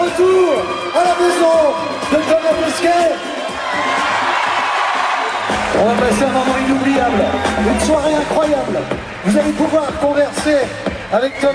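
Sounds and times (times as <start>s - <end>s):
shouts and whoops from a large crowd: 0.0s - 8.6s, 10.9s - 11.5s
large crowd clapping: 0.0s - 11.5s
speech: 5.8s - 11.5s.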